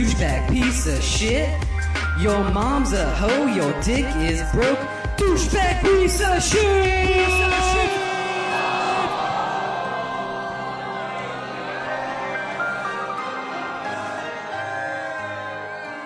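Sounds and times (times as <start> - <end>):
speech: 0.2 - 8.0
large crowd jeering and shouting in disapproval: 6.6 - 16.0.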